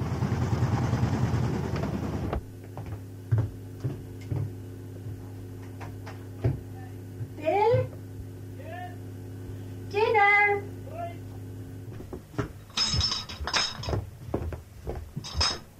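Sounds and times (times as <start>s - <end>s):
washing machine running: 0.0s - 15.7s
glass bottles clinking as they are put out at a home in Dublin: 12.7s - 14.0s, 15.2s - 15.7s.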